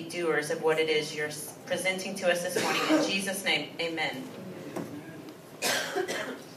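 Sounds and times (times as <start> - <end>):
speech: 0.1 - 4.5
person coughing: 2.6 - 3.1, 5.6 - 6.5.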